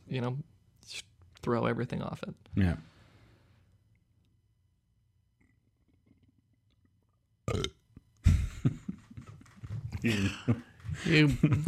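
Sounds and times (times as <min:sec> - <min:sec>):
speech: 0:00.1 - 0:02.9, 0:10.0 - 0:11.6
loud croaky belch: 0:07.5 - 0:07.9
laughter: 0:08.2 - 0:11.6.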